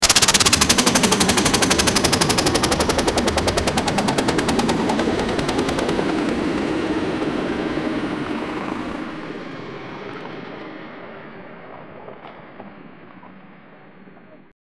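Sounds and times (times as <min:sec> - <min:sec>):
helicopter crashing: 0:00.0 - 0:11.7.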